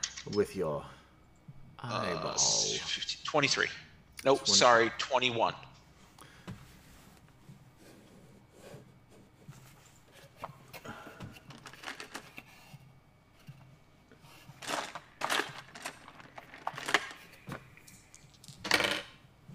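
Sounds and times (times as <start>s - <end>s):
speech: 0.2s - 1.0s, 1.8s - 5.7s
dice clattering across a hard tabletop: 11.4s - 12.4s, 14.6s - 19.2s.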